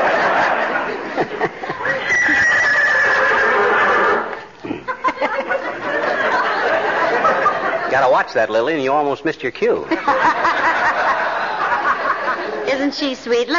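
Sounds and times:
laughter: 0.0 - 8.3, 9.8 - 12.8
mare whinnying: 1.8 - 4.4
speech: 8.2 - 10.5, 12.8 - 13.5.

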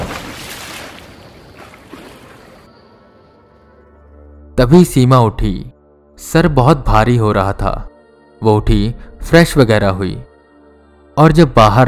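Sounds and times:
man plunging into a river from a train on a bridge: 0.0 - 2.6
speech: 4.6 - 10.3, 11.2 - 11.8.

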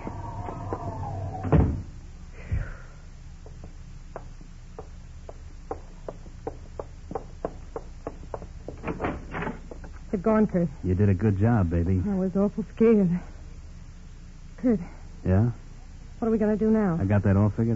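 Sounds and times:
door creaking open and bumping: 0.0 - 1.9, 8.8 - 9.8
speech: 10.2 - 13.3, 14.6 - 15.6, 16.2 - 17.7.

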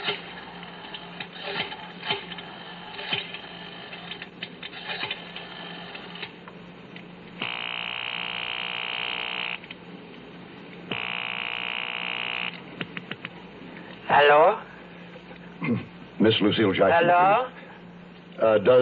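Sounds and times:
buzzing telephone ring tones from a payphone at a gas station: 7.4 - 9.6, 10.9 - 12.6
speech: 14.1 - 14.7, 15.7 - 17.5, 18.4 - 18.8.

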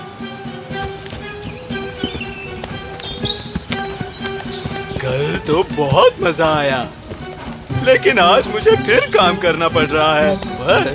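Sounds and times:
donkey hooves clip-clopping while walking: 0.0 - 10.9
light chirps: 1.2 - 9.2
laughter: 4.8 - 6.9, 7.7 - 10.9
speech: 5.0 - 7.0, 7.8 - 10.9.

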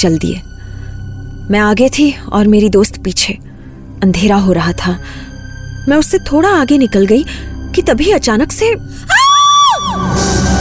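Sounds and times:
speech: 0.0 - 0.5, 1.5 - 3.4, 4.0 - 9.2
woman's loud piercing scream: 9.1 - 10.2.

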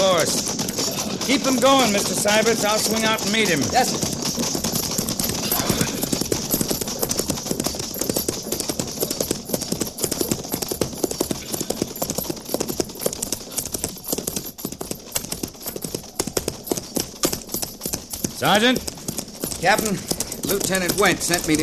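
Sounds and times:
horse hooves of a single rider clip-clopping at a quick gait: 0.0 - 21.6
speech: 1.3 - 4.1, 18.4 - 18.9, 19.6 - 21.6.

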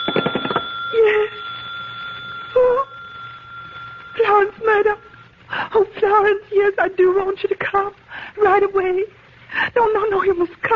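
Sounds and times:
telephone bell ringing: 0.0 - 5.3
hum and clatter: 0.0 - 10.7
speech: 4.8 - 5.1, 5.7 - 10.7.

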